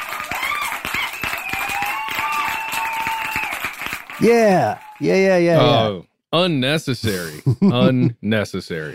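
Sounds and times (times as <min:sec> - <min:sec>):
loud whooping cheer: 0:00.0 - 0:05.0
small crowd clapping: 0:00.0 - 0:05.5
speech: 0:04.2 - 0:08.9.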